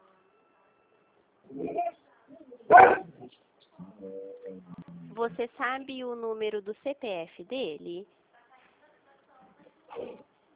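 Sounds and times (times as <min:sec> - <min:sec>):
dog barking: 0:02.7 - 0:03.2
speech: 0:05.2 - 0:08.2.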